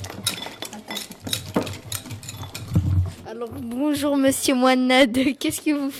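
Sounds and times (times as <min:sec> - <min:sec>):
whisk stirring melted chocolate in bowl: 0:00.0 - 0:04.6
speech: 0:03.4 - 0:05.9.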